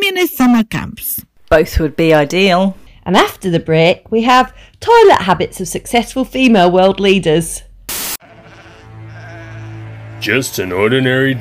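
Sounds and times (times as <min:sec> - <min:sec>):
speech: 0:00.2 - 0:07.7, 0:10.2 - 0:11.3
sheep bleating: 0:08.2 - 0:11.3.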